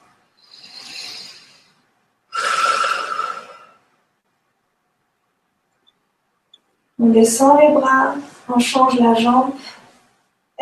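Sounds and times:
slow breathing in and out during a guided stretching and breathing exercise: 0:00.4 - 0:03.9
speech: 0:07.0 - 0:09.8.

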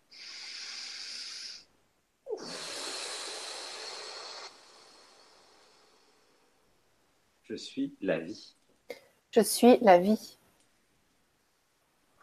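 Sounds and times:
slow deep breathing: 0:00.0 - 0:06.7
speech: 0:07.5 - 0:08.6, 0:09.3 - 0:10.4.

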